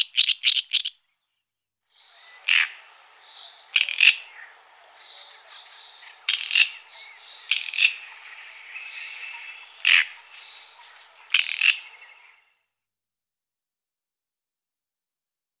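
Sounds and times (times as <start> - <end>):
Great reed warbler song: 0.0 - 12.6
faint background hiss: 2.0 - 12.4.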